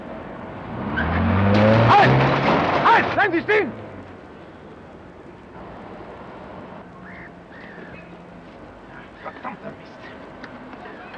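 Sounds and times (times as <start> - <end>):
car engine revving as it pulls away fast from a police check: 0.6 - 4.1
speech: 3.3 - 3.9.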